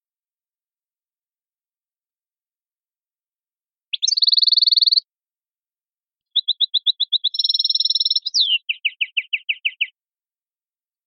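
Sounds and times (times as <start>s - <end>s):
canary song: 3.9s - 5.1s, 6.2s - 10.0s.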